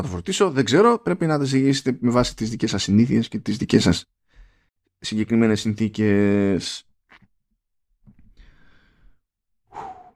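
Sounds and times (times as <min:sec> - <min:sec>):
speech: 0:00.0 - 0:04.2, 0:05.0 - 0:06.9
short sharp intake of breath and long deep inhale: 0:04.3 - 0:04.7, 0:08.3 - 0:10.1
strong exhaling sigh: 0:08.4 - 0:10.1.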